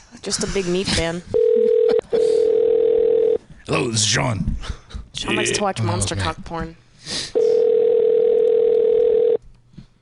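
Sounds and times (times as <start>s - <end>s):
speech: 0.2s - 1.4s, 3.7s - 7.2s
steady mid-pitched telephone dial tone while a call is placed: 1.4s - 3.4s, 7.6s - 9.4s.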